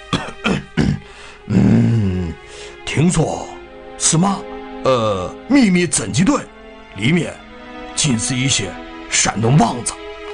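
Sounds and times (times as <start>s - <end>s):
old man clearing his throat: 0.1s - 2.1s
speech: 3.0s - 7.4s, 8.0s - 10.0s.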